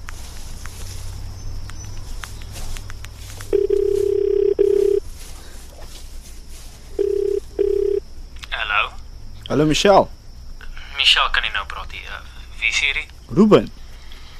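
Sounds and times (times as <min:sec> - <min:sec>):
steady low telephone ringing tone: 0:03.5 - 0:05.0, 0:07.0 - 0:08.0
telephone dialing clicks and taps: 0:03.5 - 0:05.0
speech: 0:09.5 - 0:10.2, 0:11.0 - 0:13.8.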